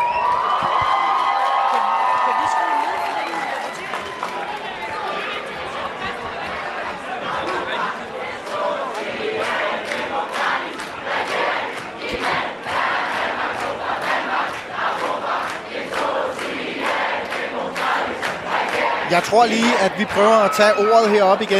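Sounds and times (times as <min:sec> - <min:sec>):
large crowd shouting and chanting in a lobby hall: 0:00.0 - 0:21.5
speech: 0:19.1 - 0:21.5.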